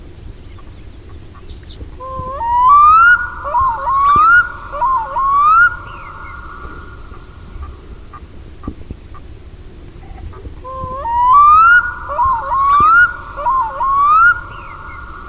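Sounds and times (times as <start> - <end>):
black-throated loon wailing: 2.0 - 7.2, 10.6 - 15.2.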